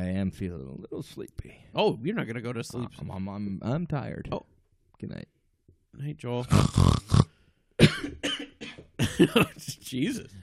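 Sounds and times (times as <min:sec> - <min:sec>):
speech: 0:00.2 - 0:05.4, 0:06.0 - 0:07.1, 0:09.2 - 0:10.4
person coughing: 0:07.8 - 0:09.6.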